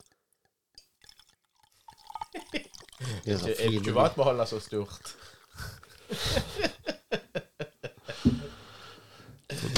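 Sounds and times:
beer poured from large bottle into glass: 0:00.9 - 0:06.2
speech: 0:02.3 - 0:06.7
laughter: 0:06.1 - 0:08.4, 0:09.5 - 0:09.7.

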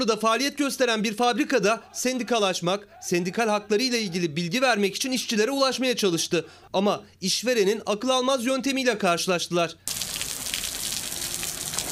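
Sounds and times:
speech: 0:00.0 - 0:10.3
water sprinklers spraying outside a factory: 0:09.9 - 0:11.9.

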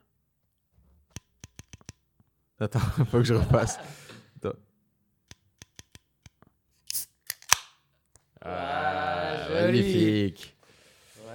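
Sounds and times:
small metallic clicks and taps: 0:01.1 - 0:02.0, 0:05.3 - 0:06.4
person laughing: 0:02.6 - 0:04.2
speech: 0:02.6 - 0:04.7, 0:08.5 - 0:10.6
Guinness beer can being opened with a hissing pop: 0:06.9 - 0:07.7.

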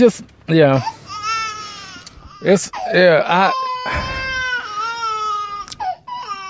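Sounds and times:
speech: 0:00.0 - 0:01.0, 0:02.4 - 0:04.1
person crying with long high wailing sobs: 0:02.8 - 0:05.2.

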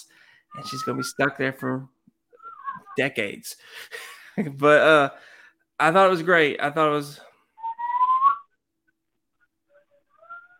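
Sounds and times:
speech: 0:00.0 - 0:02.0, 0:03.0 - 0:07.3
child whistling: 0:00.6 - 0:01.3, 0:02.4 - 0:03.0, 0:07.6 - 0:08.5, 0:10.2 - 0:10.5.

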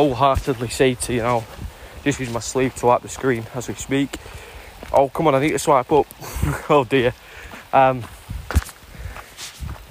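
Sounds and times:
speech: 0:00.0 - 0:08.2
soft footsteps of someone walking outdoors: 0:00.0 - 0:09.8.

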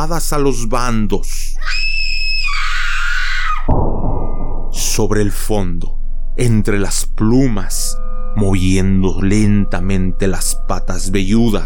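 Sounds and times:
speech: 0:00.0 - 0:01.9, 0:05.0 - 0:11.6
servant woman's long piercing scream of horror: 0:01.6 - 0:03.7
dense rumbling burst of noise: 0:03.7 - 0:07.7.

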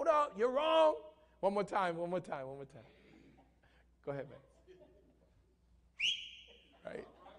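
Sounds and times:
speech: 0:00.1 - 0:03.0, 0:04.0 - 0:04.5, 0:06.8 - 0:07.1
referee whistle blast: 0:06.0 - 0:06.6.

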